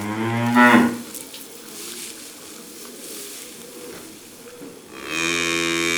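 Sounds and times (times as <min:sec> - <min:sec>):
young calf mooing: 0:00.0 - 0:01.2, 0:04.9 - 0:05.9
quiet barn rustling: 0:00.0 - 0:05.9.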